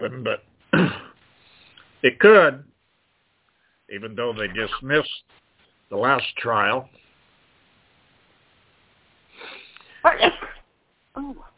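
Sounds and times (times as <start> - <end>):
speech: 0.0 - 0.9, 2.0 - 2.7, 3.9 - 7.0, 10.0 - 10.4
person sneezing loudly: 0.7 - 1.2
breathy inhale before sneeze: 1.4 - 1.9, 9.3 - 10.0.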